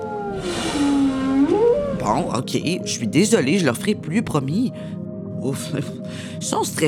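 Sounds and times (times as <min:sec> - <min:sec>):
tonal whale call: 0:00.0 - 0:02.2
speech: 0:02.1 - 0:06.8.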